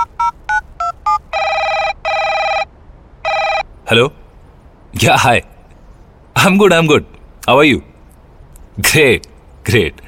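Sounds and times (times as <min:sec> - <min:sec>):
electronic phone dialing beeps: 0:00.0 - 0:03.6
long ringing tones of an outgoing phone call: 0:00.0 - 0:03.7
speech: 0:03.9 - 0:04.2, 0:05.0 - 0:05.5, 0:06.4 - 0:07.9, 0:08.8 - 0:10.0.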